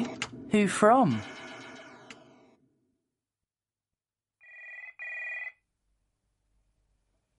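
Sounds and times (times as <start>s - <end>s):
speech: 0.5s - 1.3s
telephone bell ringing: 4.4s - 5.6s.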